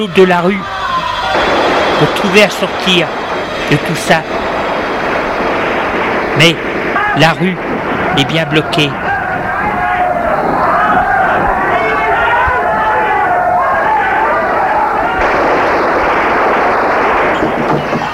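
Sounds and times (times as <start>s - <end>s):
speech: 0.0s - 0.7s, 1.4s - 4.4s, 6.4s - 9.1s
gunshots: 1.2s - 10.4s, 14.3s - 18.1s
crowd of men yelling and screaming in a street: 8.0s - 15.3s.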